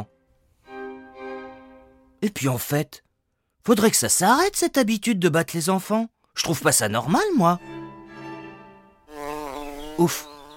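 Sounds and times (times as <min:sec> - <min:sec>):
speech: 0:02.2 - 0:03.0, 0:03.6 - 0:07.7, 0:10.0 - 0:10.3
fly buzzing: 0:08.2 - 0:10.5.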